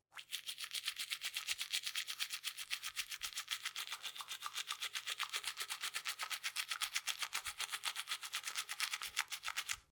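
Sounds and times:
toothbrush: 0.1s - 9.9s.

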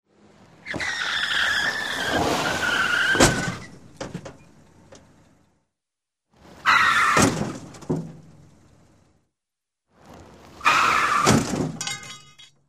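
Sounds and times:
car crash: 1.6s - 4.5s, 7.0s - 8.4s, 10.1s - 12.4s.

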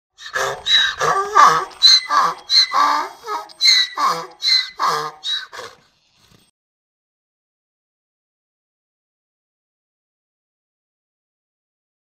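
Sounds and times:
donkeys braying: 0.2s - 5.9s.

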